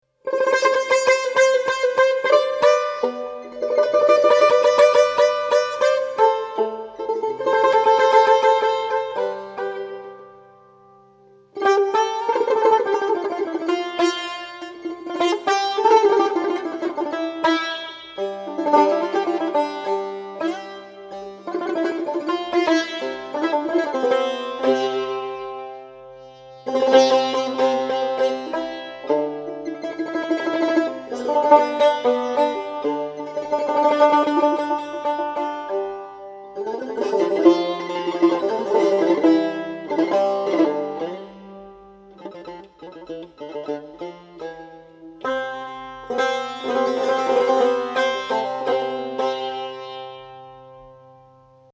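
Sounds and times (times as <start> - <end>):
solo tar playing in Mahoor mode: 0.0 - 51.7.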